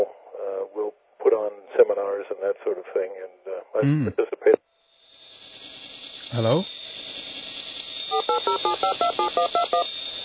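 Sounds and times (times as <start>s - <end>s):
speech: 1.4s - 4.6s, 6.3s - 6.8s, 8.3s - 10.0s
touch-tone telephone dialing beeps: 8.1s - 9.9s.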